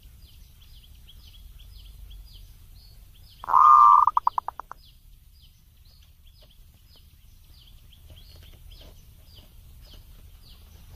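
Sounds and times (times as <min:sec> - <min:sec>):
Zebra dove song of purring coo and quick coo notes: 0:03.4 - 0:04.8.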